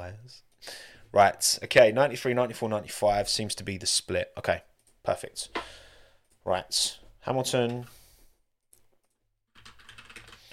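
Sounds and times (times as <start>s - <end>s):
speech: 0.1s - 5.8s, 6.4s - 8.0s
rapid typing on a computer keyboard with plastic key clicks: 9.1s - 10.5s.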